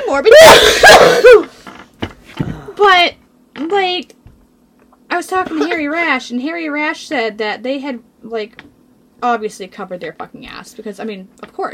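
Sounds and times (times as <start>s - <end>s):
speech: 0.1s - 1.5s, 2.8s - 4.2s, 5.1s - 11.7s
person coughing: 0.4s - 1.5s.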